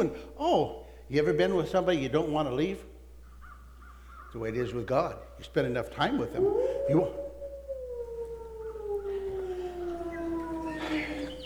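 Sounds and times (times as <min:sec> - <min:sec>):
speech: 0:00.0 - 0:02.9, 0:04.3 - 0:07.2
faint noise: 0:00.0 - 0:11.4
long mournful howl: 0:06.0 - 0:11.4.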